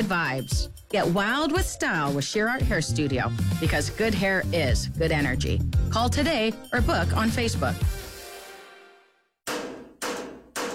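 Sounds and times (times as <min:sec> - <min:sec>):
speech: 0:00.0 - 0:08.0
hammer striking an air conditioner: 0:09.5 - 0:10.7.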